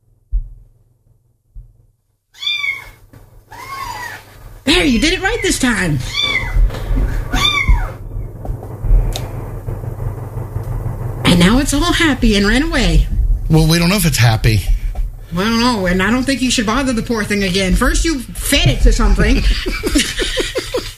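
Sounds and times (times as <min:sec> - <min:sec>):
low hum: 0:00.0 - 0:20.9
kitten meowing: 0:02.4 - 0:04.2, 0:06.0 - 0:06.6, 0:07.3 - 0:08.0
speech: 0:04.7 - 0:06.4, 0:11.4 - 0:14.7, 0:15.3 - 0:20.4
laughter: 0:19.2 - 0:20.9.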